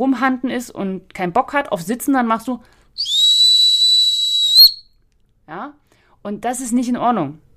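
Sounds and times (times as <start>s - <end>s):
speech: 0.0s - 3.2s, 5.5s - 7.5s
dog training whistle blast: 3.0s - 4.8s.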